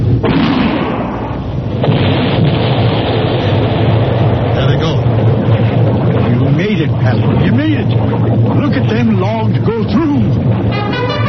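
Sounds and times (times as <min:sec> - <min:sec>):
gunpowder blast breaking a log jam: 0:00.0 - 0:11.2.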